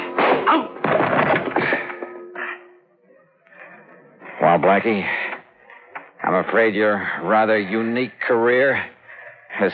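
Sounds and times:
wooden piano bench kicked against a man's legs in a struggle: 0.1 - 1.9
speech: 4.6 - 5.2, 6.2 - 9.0, 9.6 - 9.7.

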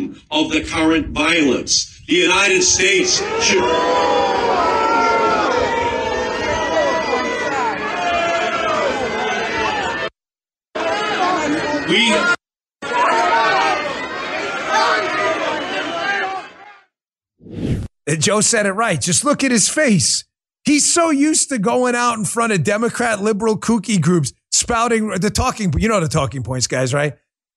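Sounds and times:
speech: 0.1 - 4.8, 18.1 - 27.2
large crowd shouting and chattering at a political rally: 2.1 - 17.0.

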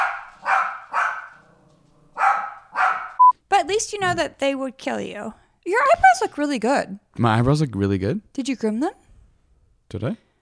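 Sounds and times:
dogs barking: 0.0 - 3.3
speech: 3.7 - 9.0, 9.9 - 10.2.

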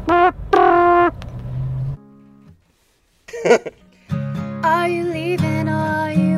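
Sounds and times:
car horn honking: 0.0 - 1.2
laughter: 3.3 - 3.8
speech: 3.4 - 3.8, 4.6 - 6.2.

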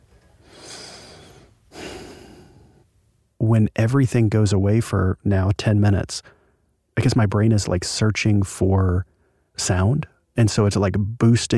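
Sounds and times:
loud breathing through the nose in a silent room: 0.4 - 2.8
speech: 3.5 - 6.4, 7.0 - 11.5.

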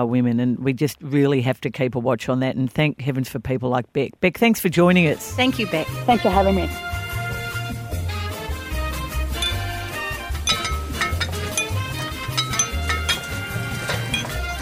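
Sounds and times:
speech: 0.0 - 6.9
steady bass-heavy musical backing: 5.4 - 14.6
glasses clinking: 9.4 - 14.6.

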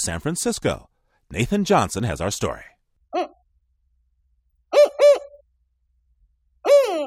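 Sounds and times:
speech: 0.0 - 3.3
spotted owl territorial hooting call: 4.7 - 5.4, 6.6 - 7.0.

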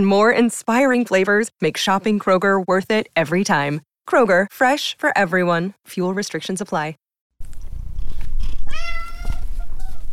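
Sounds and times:
speech: 0.0 - 7.0
male domestic cat meowing: 8.6 - 10.0.

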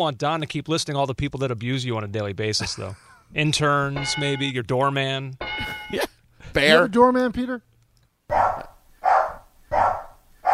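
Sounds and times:
speech: 0.0 - 7.7, 8.3 - 8.7
dog barking: 8.3 - 10.5.

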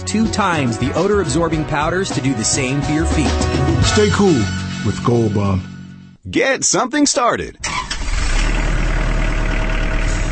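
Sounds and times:
speech: 0.0 - 7.7
compact tractor diesel engine running on an assembly line in Jefferson, Georgia: 7.6 - 10.2.

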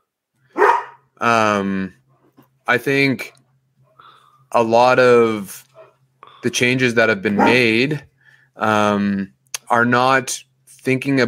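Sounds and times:
dog barking: 0.6 - 1.0, 7.4 - 7.7
speech: 1.2 - 2.0, 2.7 - 3.4, 4.5 - 5.7, 6.4 - 11.2.

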